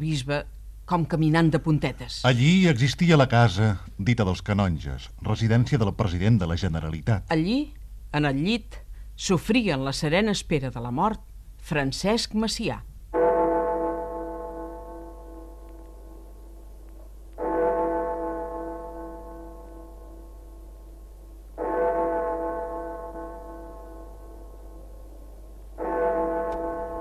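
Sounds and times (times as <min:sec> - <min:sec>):
speech: 0:00.0 - 0:12.9
deep cathedral bell tolling in Barcelona: 0:13.2 - 0:16.7, 0:17.4 - 0:21.0, 0:21.6 - 0:26.9.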